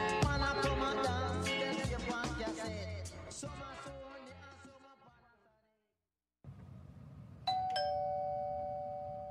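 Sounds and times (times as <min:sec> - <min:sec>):
music: 0:00.0 - 0:05.3
doorbell chime: 0:07.5 - 0:09.2.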